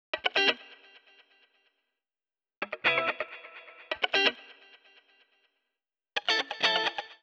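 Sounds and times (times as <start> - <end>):
guitar atmosphere: 0.2 - 1.2, 2.6 - 5.2, 6.2 - 7.2.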